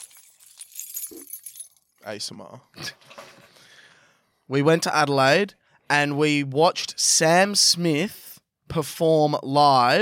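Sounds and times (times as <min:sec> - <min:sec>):
keys in pockets jangling and rattling: 0:00.0 - 0:02.0
speech: 0:02.0 - 0:03.2, 0:04.5 - 0:09.9.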